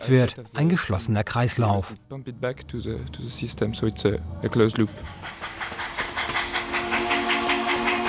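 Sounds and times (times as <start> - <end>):
speech: 0.0 - 5.5
faint rhythmic chuffing of steam engine: 2.4 - 8.0
steam engine hissing escaping steam: 4.9 - 8.0.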